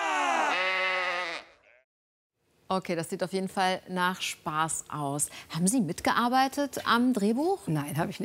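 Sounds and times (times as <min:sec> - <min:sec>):
sheep bleating: 0:00.2 - 0:01.8
speech: 0:02.7 - 0:08.2.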